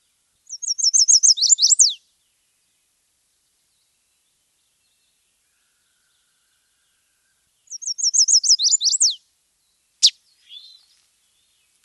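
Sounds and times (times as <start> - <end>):
chestnut-sided warbler song: 0.0 - 11.8.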